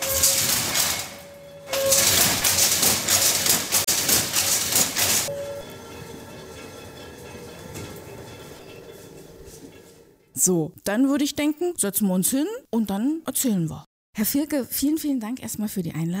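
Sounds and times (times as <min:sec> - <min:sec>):
weaving loom batten beating weft thread into fabric: 0:00.0 - 0:10.1
speech: 0:10.4 - 0:16.1.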